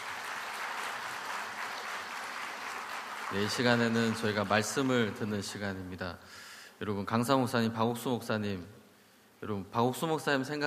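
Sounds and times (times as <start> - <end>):
audience applauding at a church gathering: 0.0 - 5.6
speech: 3.3 - 8.8, 9.4 - 10.6.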